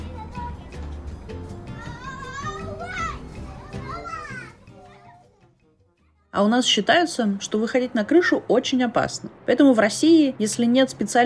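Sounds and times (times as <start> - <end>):
many children shouting and chattering on a playground: 0.0 - 6.4
speech: 6.4 - 11.2.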